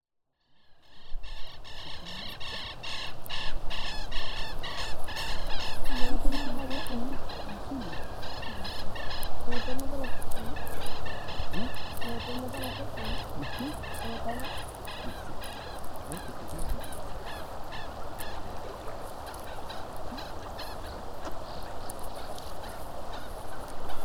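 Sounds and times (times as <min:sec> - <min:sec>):
southern lapwings calling: 0:00.6 - 0:24.0
river flowing along an ecological trail: 0:01.7 - 0:24.0.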